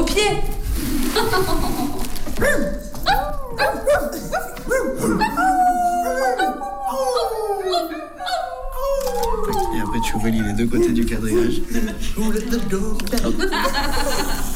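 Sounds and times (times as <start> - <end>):
speech: 0.2 - 1.8, 10.2 - 14.0
laughter: 1.1 - 2.2, 7.7 - 14.5
several voices imitating dogs yelping howling and whimpering: 2.4 - 11.8.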